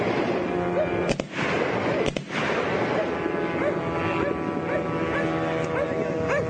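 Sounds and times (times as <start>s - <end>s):
gunshots fired at a drone: 0.0s - 3.6s
dense constant roar: 0.0s - 6.4s.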